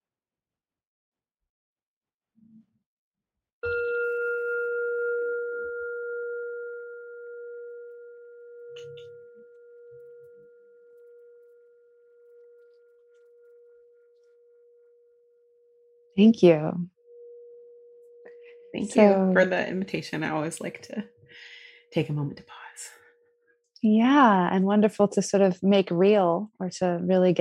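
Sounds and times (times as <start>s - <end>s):
meditation bell ringing: 3.6s - 16.2s, 16.9s - 20.7s
speech: 16.2s - 17.0s, 18.8s - 23.0s, 23.8s - 27.4s.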